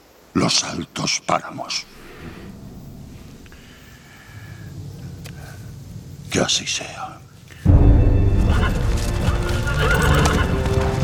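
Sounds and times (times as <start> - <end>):
speech: 0.4 - 2.4, 6.3 - 7.2
dense clattering hoofbeats: 8.2 - 11.0
horse neighing in a long whinny: 8.5 - 11.0.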